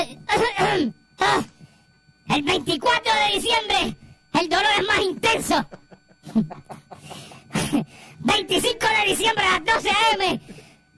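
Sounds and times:
speech: 0.0 - 1.5, 2.3 - 10.6
laughter: 5.6 - 7.4
person coughing: 6.2 - 7.9.

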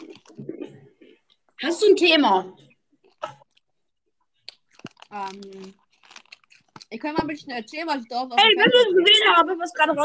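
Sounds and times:
cheese sticks being chewed with crisp bites: 0.0 - 0.5, 3.0 - 7.4
speech: 1.6 - 2.6, 5.1 - 5.8, 6.9 - 10.0.

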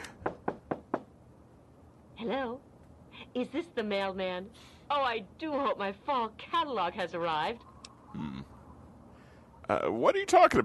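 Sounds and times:
firm knocks on a wooden door: 0.2 - 1.2
speech: 2.2 - 2.7, 3.4 - 8.4, 9.7 - 10.6.

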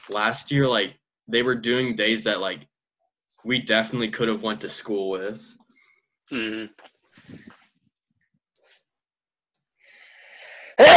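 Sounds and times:
speech: 0.1 - 2.7, 3.4 - 5.6, 6.3 - 7.5
short vocal sound: 6.3 - 7.4
faint breathy noise: 9.8 - 10.8
loud sneeze: 10.8 - 10.9.

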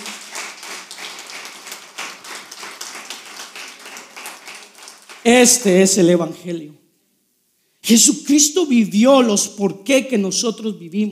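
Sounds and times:
audience applauding: 0.0 - 5.3
speech: 5.2 - 6.8, 7.9 - 11.0.

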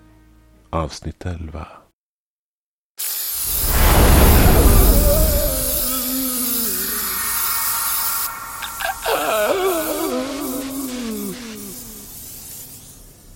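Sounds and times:
speech: 0.7 - 1.8
steady hissing background: 3.0 - 13.3
loud rushing burst: 3.3 - 12.3
tormented wailing screams: 3.4 - 12.8.

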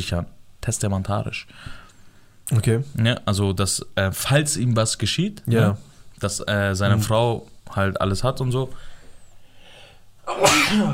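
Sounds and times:
speech: 0.0 - 1.8, 2.5 - 8.9, 10.3 - 10.9
loud sneeze: 10.3 - 10.9.

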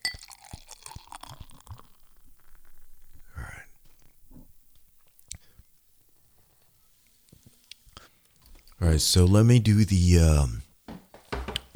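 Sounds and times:
glass clinking: 0.0 - 1.9
beer pouring from a bottle into a glass: 0.0 - 3.2
speech: 8.8 - 10.6.

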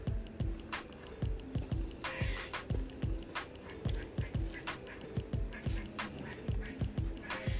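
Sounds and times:
agitated squirrel chattering with harsh nasal squeaks: 0.0 - 7.5.

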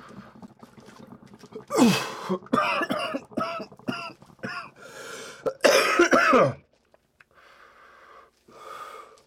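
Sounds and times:
person coughing after smoking from a bowl: 1.8 - 4.8, 5.5 - 6.6.

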